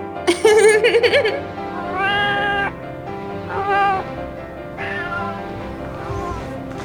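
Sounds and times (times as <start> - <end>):
laughter: 0.0 - 6.8
kittens meowing: 0.4 - 6.8.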